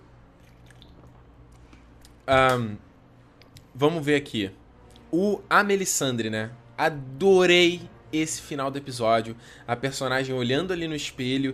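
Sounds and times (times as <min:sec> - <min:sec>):
person sipping water: 0:00.4 - 0:02.2
speech: 0:02.3 - 0:02.9, 0:03.8 - 0:11.5.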